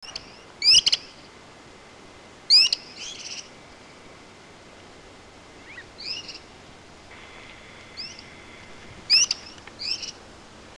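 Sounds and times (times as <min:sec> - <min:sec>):
bird song: 0:00.0 - 0:01.3, 0:02.5 - 0:04.2, 0:05.6 - 0:06.5, 0:07.1 - 0:10.2.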